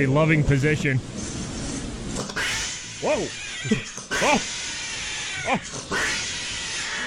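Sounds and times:
speech: 0.0 - 1.2, 3.0 - 4.6, 5.4 - 6.3
two cats yowling and fighting: 2.3 - 7.0.

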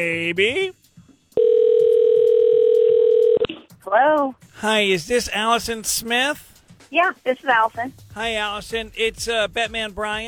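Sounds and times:
speech: 0.0 - 0.8, 3.9 - 10.2
telephone dial tone: 1.4 - 3.4.

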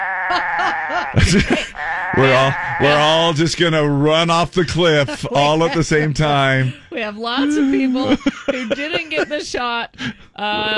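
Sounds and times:
sheep bleating loudly: 0.0 - 4.1
laughter: 0.0 - 10.7
speech: 0.0 - 10.7.

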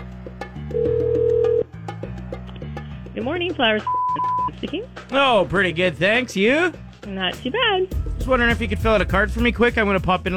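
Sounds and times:
speech: 0.7 - 1.2, 3.2 - 10.3
telephone line tones while placing a prank call to a florist: 0.7 - 1.6, 3.9 - 4.5.

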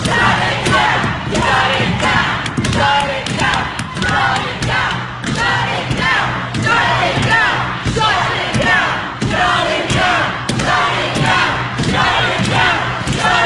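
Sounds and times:
crowd of protesters chanting and yelling: 0.0 - 13.4.

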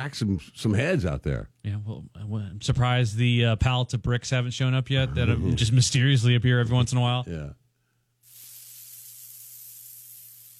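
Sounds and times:
speech: 0.0 - 7.6
food sizzling in a frying pan: 8.3 - 10.5.

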